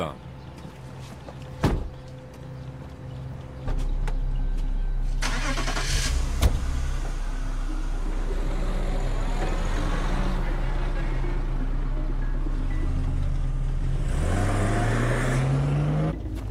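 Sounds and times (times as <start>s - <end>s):
speech: 0.0s - 0.3s
car engine idling with low rumble: 2.6s - 13.9s
car engine cranking and starting: 3.9s - 16.4s.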